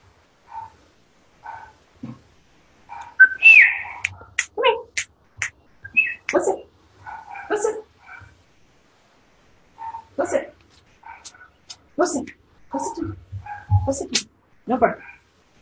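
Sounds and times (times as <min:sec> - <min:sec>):
dogs barking: 0:00.4 - 0:02.2, 0:02.8 - 0:08.4, 0:09.7 - 0:14.0, 0:14.8 - 0:15.3
high whistle-like tones: 0:03.2 - 0:04.0, 0:05.8 - 0:06.3.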